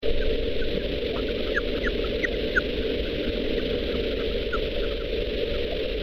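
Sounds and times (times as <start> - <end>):
Daubenton's bat calls: 0.1 - 5.9.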